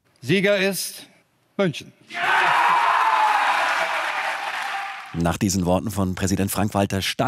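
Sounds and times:
speech: 0.2s - 2.4s, 5.1s - 7.2s
large crowd cheering: 2.1s - 5.2s.

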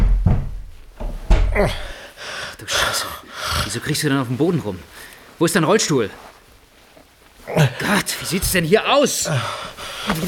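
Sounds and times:
door being kicked in with heavy booming thuds: 0.0s - 1.9s
speech: 1.6s - 6.3s, 7.5s - 10.2s.

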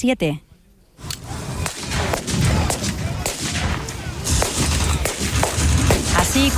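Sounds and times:
speech: 0.0s - 0.5s, 6.4s - 6.5s
heavier blasts and battle noise at a battle reenactment: 1.2s - 6.5s
sharp gunshots at a battle reenactment: 1.2s - 6.5s.

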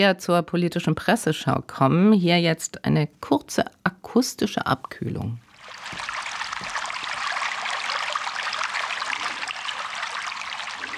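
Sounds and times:
speech: 0.0s - 6.2s
stream of water splashing and babbling: 5.4s - 10.9s.

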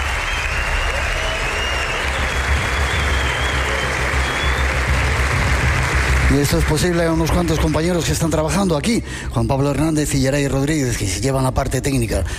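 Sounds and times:
theatre audience applause: 0.0s - 8.1s
speech: 6.4s - 12.3s.

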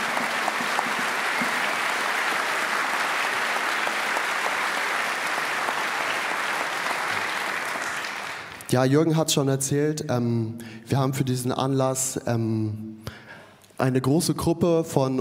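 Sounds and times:
large audience applauding at a music festival concert: 0.0s - 8.7s
speech: 8.7s - 13.2s, 13.8s - 15.1s.

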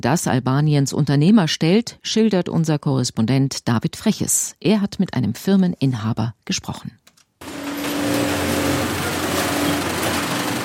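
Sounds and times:
speech: 0.0s - 7.0s
sewing machines stitching protective workwear in a factory: 7.4s - 10.6s.

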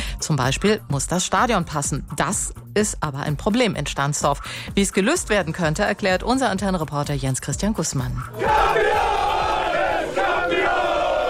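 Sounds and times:
speech: 0.2s - 9.0s
team of players cheering and shouting in a championship celebration: 8.4s - 11.2s.

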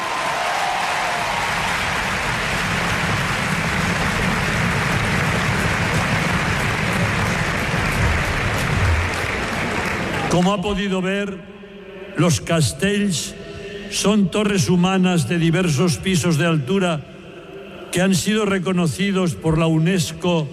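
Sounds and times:
large crowd applauding a castellers human tower: 0.0s - 10.8s
speech: 10.4s - 11.6s, 12.2s - 17.1s, 17.9s - 20.5s.

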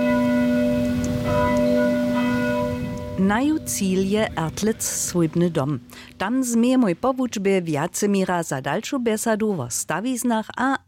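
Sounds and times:
parish church bells ringing beside a school: 0.0s - 5.9s
speech: 3.2s - 10.8s.

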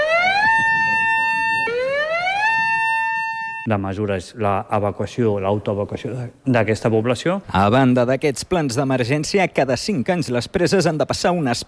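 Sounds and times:
dam flood warning siren wailing: 0.0s - 3.7s
speech: 3.7s - 11.6s.

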